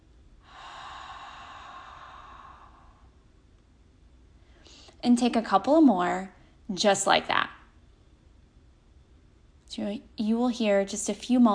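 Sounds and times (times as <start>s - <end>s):
slow deep breath exhaled through the mouth during a breathing exercise: 0.4s - 3.2s
speech: 5.0s - 7.6s, 9.8s - 11.5s.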